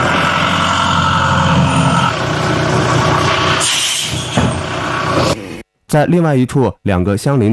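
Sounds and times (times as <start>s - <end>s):
hissing burst: 0.0s - 5.6s
tow truck engine rumbling while hauling away a car: 0.0s - 5.6s
speech: 6.0s - 7.5s.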